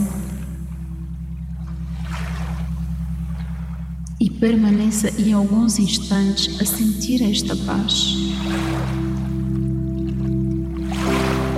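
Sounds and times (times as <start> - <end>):
low droning hum: 0.0 - 11.5
soft sea waves washing in and receding: 1.8 - 3.8, 7.5 - 11.5
speech: 4.2 - 9.0.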